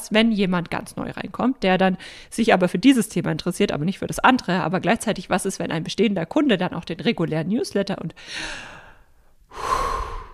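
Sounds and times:
speech: 0:00.1 - 0:08.8, 0:09.5 - 0:09.9
person breathing deeply: 0:08.2 - 0:10.3.

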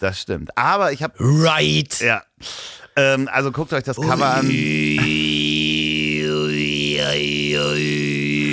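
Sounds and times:
speech: 0:00.0 - 0:05.5
unaccompanied throat singing drone with whistling overtone: 0:04.0 - 0:08.5.

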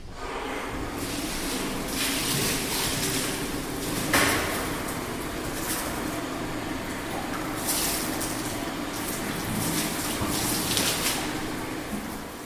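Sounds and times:
water spraying to rinse out brewing vat: 0:00.1 - 0:12.4.

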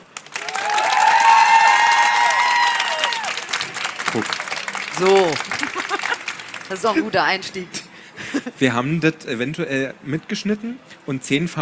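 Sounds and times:
audience clapping: 0:00.0 - 0:07.4
crowd shouting and whooping: 0:00.3 - 0:07.2
laughter: 0:04.0 - 0:08.7
speech: 0:04.2 - 0:04.4, 0:05.0 - 0:05.4, 0:06.7 - 0:11.6.

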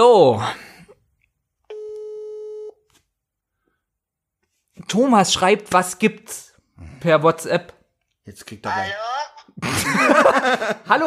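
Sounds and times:
speech: 0:00.2 - 0:00.6, 0:04.8 - 0:11.0
telephone ringback tone while a call is being placed: 0:01.7 - 0:02.8
laughter: 0:09.6 - 0:10.9.

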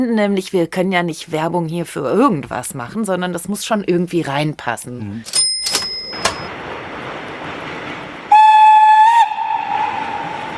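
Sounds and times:
speech: 0:00.0 - 0:05.5
short sharp train clanks: 0:05.3 - 0:06.5
loud sustained train whistle: 0:08.3 - 0:10.5.

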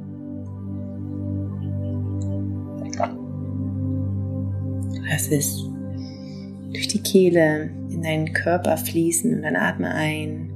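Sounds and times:
soft sustained musical drone: 0:00.0 - 0:10.5
person sipping hot water: 0:02.8 - 0:03.2
speech: 0:05.2 - 0:05.7, 0:06.8 - 0:10.5.

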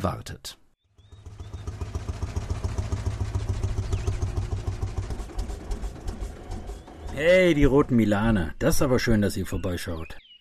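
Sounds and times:
speech: 0:00.0 - 0:00.6, 0:07.2 - 0:10.2
tractor engine running: 0:00.9 - 0:08.5.

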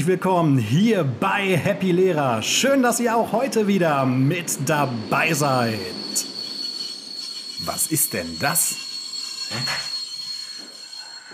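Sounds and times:
speech: 0:00.0 - 0:06.3, 0:07.7 - 0:08.9, 0:09.5 - 0:09.9
train passing by: 0:00.0 - 0:11.3
train wheels squealing on rails as a train arrives: 0:03.6 - 0:11.3.

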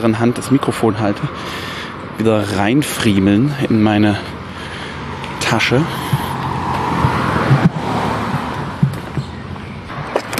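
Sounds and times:
speech: 0:00.0 - 0:04.4, 0:05.4 - 0:06.2
car being opened and a bag thrown in: 0:06.1 - 0:09.4.

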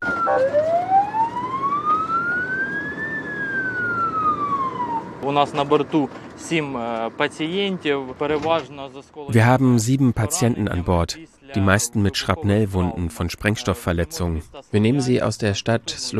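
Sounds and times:
ambulance siren wailing: 0:00.0 - 0:05.6
moving ambulance engine and road rumble: 0:00.0 - 0:09.9
paramedic talking: 0:05.2 - 0:16.1
speech: 0:05.3 - 0:16.1.

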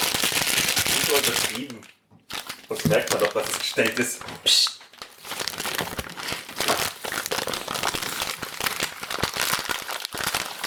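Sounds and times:
lemons handled against the microphone crinkling and crackling: 0:00.0 - 0:10.6
speech: 0:01.1 - 0:01.9, 0:02.7 - 0:04.7.

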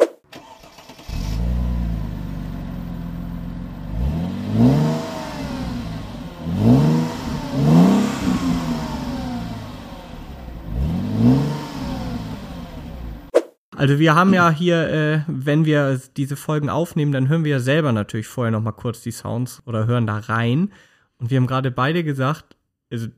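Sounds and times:
car engine starting, idling and revving: 0:00.4 - 0:13.3
speech: 0:13.8 - 0:23.1.

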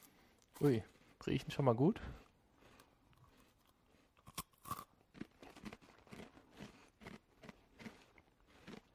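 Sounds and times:
speech: 0:00.6 - 0:02.2
puff pastry cheese stick being bitten and chewed: 0:02.2 - 0:08.9.

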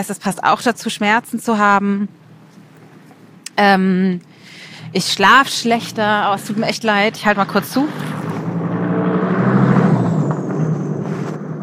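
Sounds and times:
speech: 0:00.0 - 0:02.2, 0:03.6 - 0:08.2
low rumble of traffic passing: 0:00.0 - 0:11.6
vehicle engine droning: 0:04.4 - 0:11.6.

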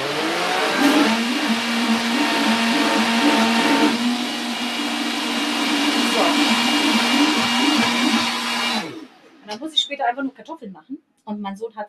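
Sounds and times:
electric blender whirring while chopping herbs: 0:00.0 - 0:09.4
speech: 0:10.0 - 0:11.8.

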